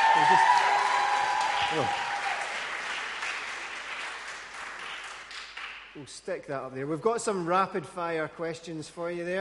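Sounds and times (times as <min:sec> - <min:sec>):
audience applause and cheering: 0:00.0 - 0:05.8
speech: 0:00.2 - 0:00.7, 0:01.7 - 0:02.1, 0:06.0 - 0:09.3.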